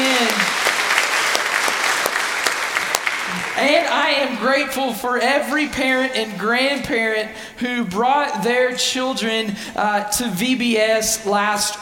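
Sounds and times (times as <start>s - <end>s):
church audience applauding its volunteers: 0.0s - 4.5s
speech: 3.6s - 11.8s.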